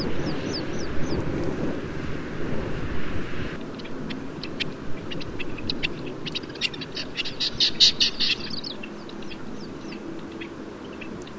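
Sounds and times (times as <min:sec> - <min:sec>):
low background noise: 0:00.0 - 0:11.3
Common quail call: 0:03.8 - 0:11.3.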